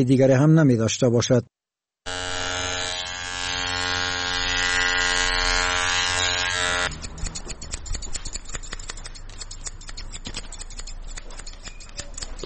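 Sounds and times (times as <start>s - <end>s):
speech: 0.0s - 1.6s
electric hair clippers cutting hair in a barbershop in Kabul: 2.1s - 7.2s.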